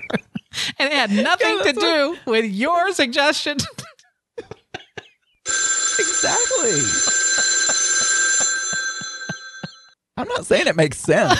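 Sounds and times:
speech: 0:00.1 - 0:03.8, 0:06.2 - 0:07.1, 0:10.2 - 0:11.3
telephone ringing with a steady electronic tone: 0:05.5 - 0:10.0.

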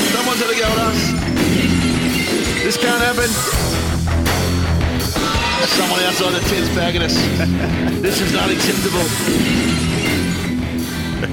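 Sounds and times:
breaking glass crash radio stinger sound effect: 0:00.1 - 0:03.6, 0:05.1 - 0:07.0, 0:08.0 - 0:10.6
speech: 0:02.7 - 0:04.3, 0:05.6 - 0:10.2
laughter: 0:06.1 - 0:09.0, 0:10.9 - 0:11.3.

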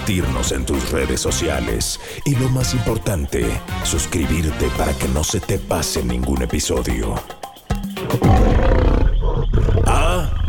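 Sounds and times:
speech: 0:00.1 - 0:07.4, 0:08.0 - 0:08.9
grunts: 0:08.0 - 0:10.4
lion roaring: 0:08.0 - 0:10.4.

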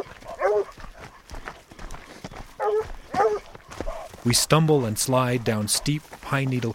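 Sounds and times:
hounds baying while trailing a scent: 0:00.0 - 0:04.3, 0:05.6 - 0:06.2
speech: 0:04.2 - 0:06.7.

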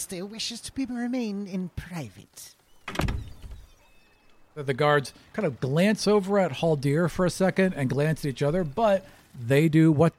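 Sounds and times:
speech: 0:00.0 - 0:03.0, 0:04.6 - 0:10.1
heavy doors slamming shut with a deep booming thud: 0:02.9 - 0:03.6.

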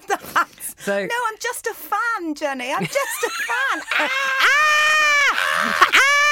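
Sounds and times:
speech: 0:00.4 - 0:06.2
laughter: 0:02.8 - 0:06.3
person screaming high-pitched: 0:04.0 - 0:06.3.

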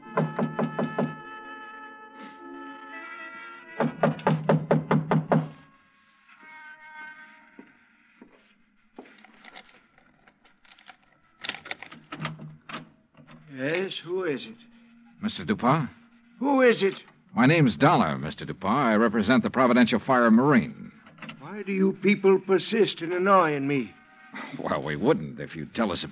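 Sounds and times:
soft sustained music: 0:00.0 - 0:10.0, 0:13.3 - 0:19.3, 0:20.5 - 0:26.0
rapid firm knocking on a locked front door late at night: 0:00.1 - 0:01.2, 0:03.8 - 0:05.6
speech: 0:14.0 - 0:20.8, 0:21.6 - 0:26.0.

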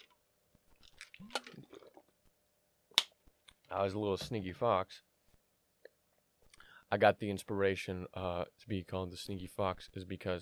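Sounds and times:
person sipping and swallowing a drink: 0:00.7 - 0:02.1
speech: 0:03.7 - 0:05.1, 0:06.9 - 0:10.4.

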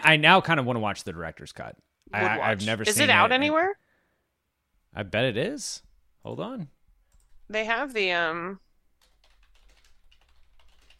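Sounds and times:
speech: 0:00.0 - 0:03.8, 0:04.9 - 0:06.8, 0:07.5 - 0:08.6
typing on a computer keyboard: 0:07.1 - 0:07.4, 0:09.0 - 0:10.9.

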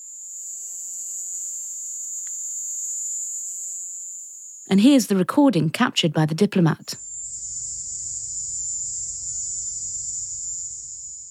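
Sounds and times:
Indies short-tailed crickets trilling: 0:00.0 - 0:04.7, 0:07.0 - 0:11.2
speech: 0:04.7 - 0:07.0.

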